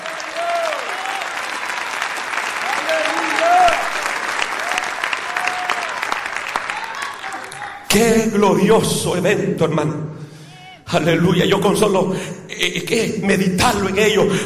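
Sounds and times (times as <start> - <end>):
audience applauding: 0.0 - 7.9
speech: 8.0 - 10.2, 10.9 - 14.4.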